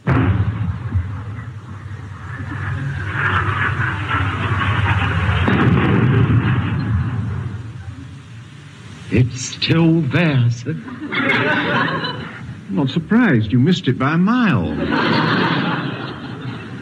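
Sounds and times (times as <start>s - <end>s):
gun opening fire: 0.0s - 4.3s, 5.0s - 7.6s
speech: 9.2s - 15.5s
laughter: 9.7s - 16.8s.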